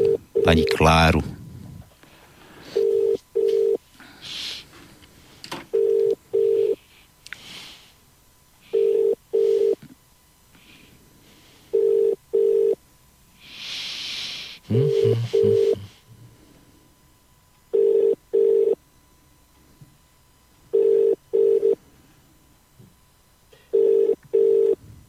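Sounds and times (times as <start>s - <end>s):
outgoing phone call ringback tone: 0.0s - 0.8s, 2.7s - 3.8s, 5.7s - 6.8s, 8.7s - 9.8s, 11.7s - 12.8s, 14.8s - 15.8s, 17.7s - 18.8s, 20.7s - 21.8s, 23.7s - 24.8s
speech: 0.4s - 1.4s.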